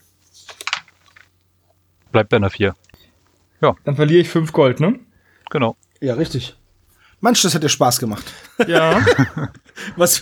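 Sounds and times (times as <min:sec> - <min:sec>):
dice tumbling across a hard surface: 0:00.4 - 0:01.3
speech: 0:02.1 - 0:02.8, 0:03.6 - 0:06.6, 0:07.2 - 0:10.2
laughter: 0:08.1 - 0:10.2.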